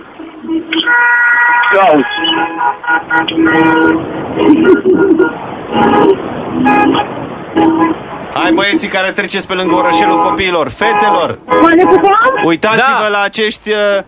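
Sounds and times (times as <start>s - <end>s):
car horns honking at a busy intersection: 0.0s - 14.0s
traffic noise at a busy intersection: 0.0s - 14.0s
speech: 0.4s - 14.0s.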